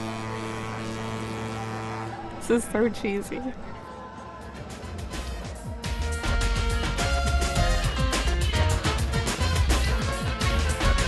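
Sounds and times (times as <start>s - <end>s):
boat horn blaring a deep steady tone: 0.0s - 3.2s, 6.0s - 11.0s
speech: 2.5s - 3.7s.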